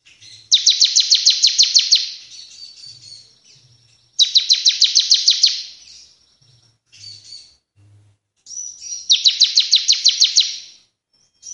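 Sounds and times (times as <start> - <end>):
Bar-winged prinia singing sharp descending chips and twittering: 0.0 - 6.2, 8.5 - 11.5.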